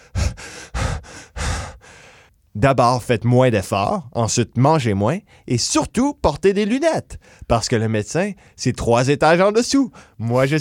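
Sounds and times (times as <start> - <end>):
heavy out-of-breath panting after climbing stairs: 0.0 - 2.3
speech: 2.6 - 10.5.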